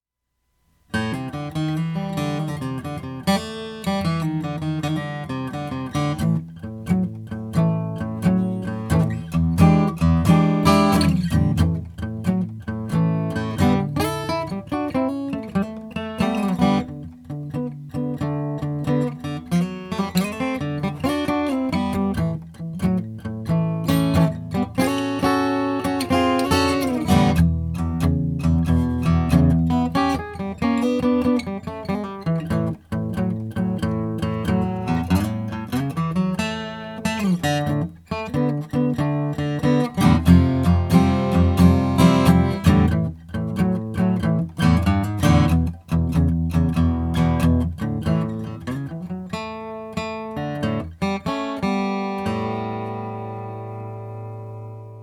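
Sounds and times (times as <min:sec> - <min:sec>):
Schwartz Oracle Brazilian rosewood acoustic guitar: 0:00.5 - 0:55.0.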